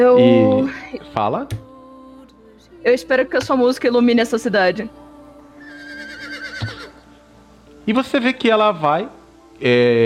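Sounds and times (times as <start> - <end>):
speech: 0.0 - 1.6, 2.8 - 5.0, 7.9 - 10.0
horse whinnying: 5.6 - 7.0.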